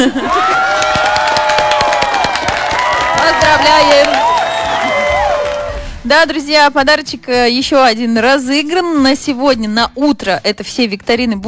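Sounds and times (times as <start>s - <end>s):
speech: 0.0s - 0.6s, 3.5s - 4.3s, 6.1s - 11.4s
recorded crowd applause sound effect with cheering and whoops: 0.2s - 5.9s.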